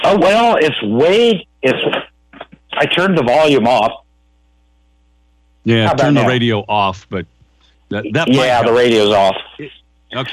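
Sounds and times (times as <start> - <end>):
speech: 0.1 - 2.1, 2.8 - 4.0, 5.6 - 10.3
voice echoing back over a telephone line during a call: 5.7 - 7.2, 7.9 - 10.3.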